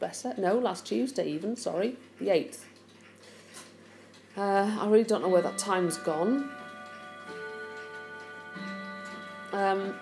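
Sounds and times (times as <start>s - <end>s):
speech: 0.0s - 2.7s, 4.4s - 6.6s, 9.6s - 10.0s
clocks ticking: 1.9s - 10.0s
several clocks chiming: 4.6s - 10.0s.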